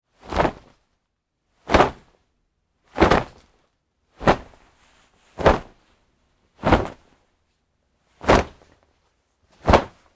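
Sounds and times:
jeans fabric rustling fight moves: 0:00.2 - 0:00.8, 0:01.6 - 0:02.2, 0:02.9 - 0:03.6, 0:04.2 - 0:06.0, 0:06.6 - 0:07.2, 0:08.1 - 0:10.1.

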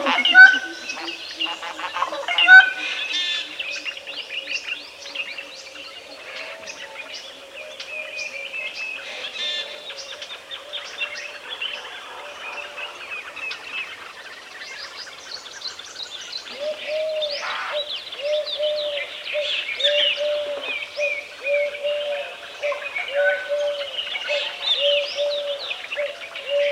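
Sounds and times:
collared dove cooing in the morning: 0:00.0 - 0:03.8, 0:16.5 - 0:26.7
birds chirping and whistling: 0:00.0 - 0:11.8, 0:12.4 - 0:26.7.

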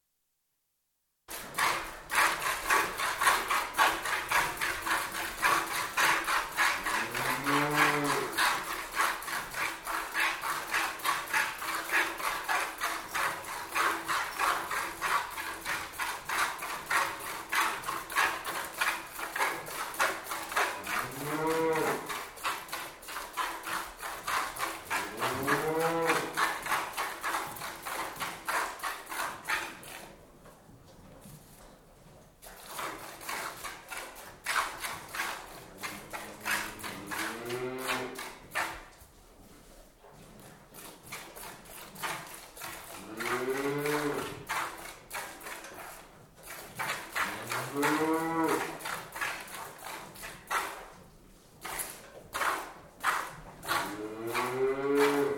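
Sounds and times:
cow being milked by hand indoors: 0:01.3 - 0:55.3
cow mooing loudly indoors: 0:06.8 - 0:08.4, 0:20.8 - 0:22.1, 0:25.0 - 0:26.4, 0:35.8 - 0:38.2, 0:43.0 - 0:44.4, 0:47.2 - 0:48.8, 0:53.8 - 0:55.3.

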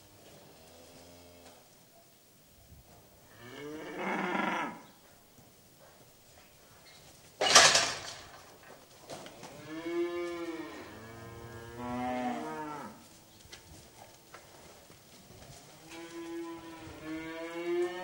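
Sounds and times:
restless cattle mooing in a shed: 0:03.4 - 0:04.8, 0:09.6 - 0:13.0, 0:15.8 - 0:18.0
loud clatter: 0:07.4 - 0:08.5.

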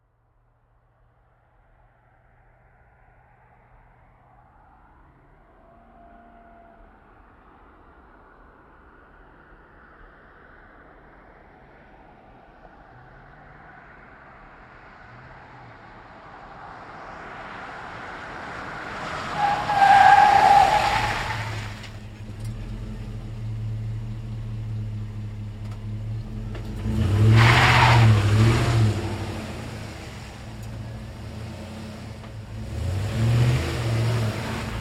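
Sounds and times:
GMC Savana van moving fast with edgy moves: 0:12.7 - 0:34.7.

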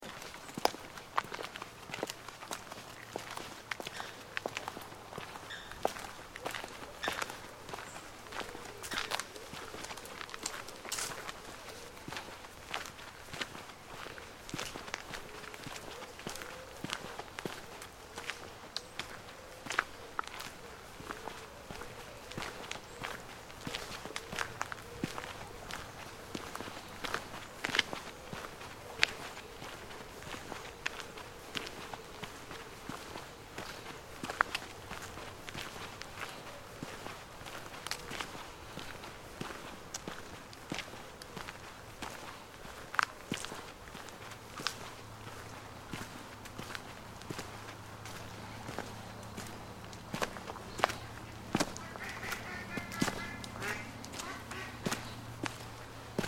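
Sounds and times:
footsteps walking through tranquil parkland: 0:00.0 - 0:56.2
water birds calling in parkland: 0:00.1 - 0:41.4, 0:43.9 - 0:56.2.

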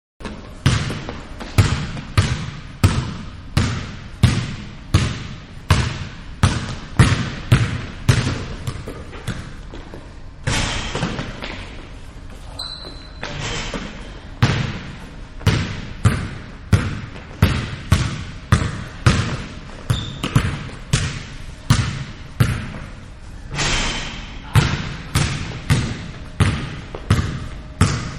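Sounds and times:
small indoor basketball game ambience: 0:00.2 - 0:28.1.

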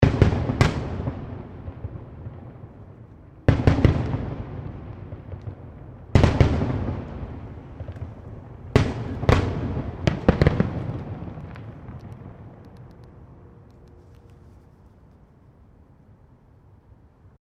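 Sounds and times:
small display fireworks explosions: 0:00.0 - 0:14.7.

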